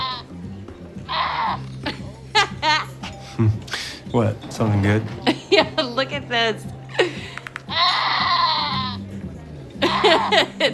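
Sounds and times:
goat bleating: 0.0s - 0.3s, 1.1s - 1.6s, 7.7s - 9.0s, 9.9s - 10.3s
laughter: 1.8s - 3.9s, 5.2s - 6.1s, 9.8s - 10.7s
speech: 3.4s - 5.3s, 6.0s - 6.8s, 10.0s - 10.7s.

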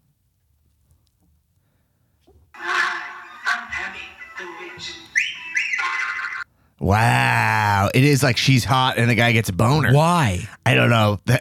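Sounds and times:
cartoonish tonal sound effects: 2.6s - 6.5s
wolf whistle sound effect: 5.0s - 6.4s
speech: 6.8s - 11.3s.

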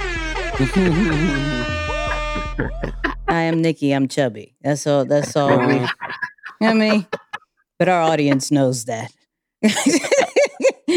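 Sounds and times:
loud blaring air horn sound effect: 0.0s - 2.6s
speech: 0.6s - 1.8s, 2.6s - 6.0s, 6.6s - 7.2s, 7.8s - 10.3s
vocal noise: 0.6s - 3.4s, 5.0s - 7.4s
laughter: 0.6s - 3.7s, 5.0s - 7.5s, 9.6s - 10.9s.

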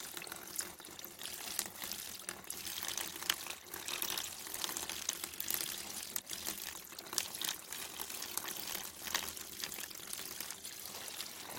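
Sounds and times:
bamboo water fountain pouring and trickling: 0.0s - 11.5s.

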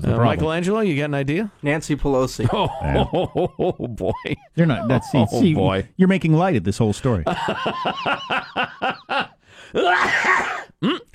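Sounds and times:
speech: 0.0s - 11.0s
laughter: 2.4s - 5.8s, 7.3s - 9.4s
person having a coughing fit: 9.8s - 11.1s.

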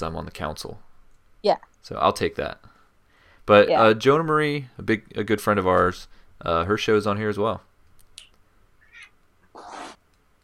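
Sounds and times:
speech: 0.0s - 2.7s, 3.5s - 7.7s
angry cat meowing and yowling: 8.8s - 10.0s.

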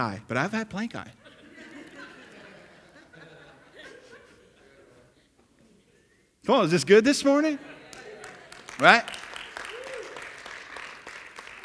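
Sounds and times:
speech: 0.0s - 1.2s, 6.4s - 7.7s, 8.8s - 9.2s
laughter: 1.2s - 5.9s, 7.3s - 9.3s
audience clapping: 7.8s - 11.6s
person cheering or whooping: 8.8s - 10.2s.

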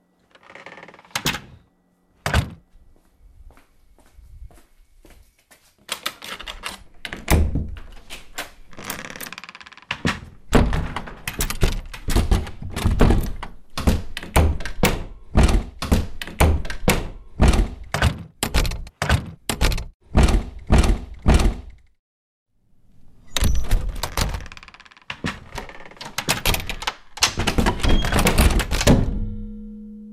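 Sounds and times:
wooden doors being shut: 2.3s - 2.6s, 7.1s - 8.0s, 9.0s - 21.8s, 23.4s - 29.3s
knocking on wooden doors: 12.1s - 21.7s.

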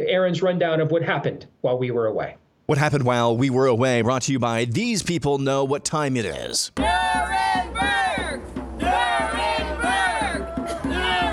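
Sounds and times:
speech: 0.1s - 8.4s
din of protesters' voices: 2.7s - 6.9s
faint drumbeat: 6.8s - 11.3s
large crowd of protesters chanting in unison in New York City: 6.8s - 11.3s
protesters shouting: 6.8s - 11.3s.

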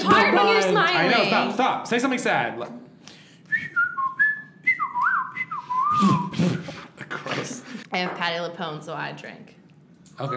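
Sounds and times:
speech: 1.0s - 2.9s, 7.4s - 9.6s, 10.2s - 10.3s
person whistling a tune: 3.5s - 6.8s
breathy puffs of air: 5.6s - 7.8s.

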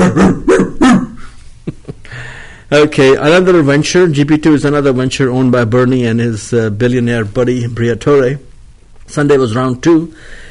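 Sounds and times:
dog barking: 0.0s - 1.0s
speech: 0.1s - 0.5s, 2.7s - 8.5s, 9.1s - 10.4s.

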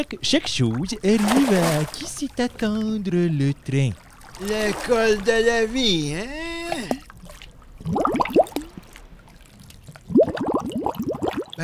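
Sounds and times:
speech: 0.0s - 7.0s
bubbles rising in water with glugs and pops: 6.7s - 11.6s.

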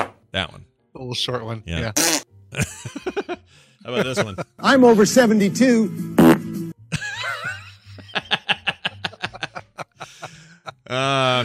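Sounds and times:
speech: 0.4s - 6.1s
fart sound effect: 1.9s - 2.3s, 6.2s - 6.6s
laughter: 2.6s - 4.8s, 6.9s - 11.4s.

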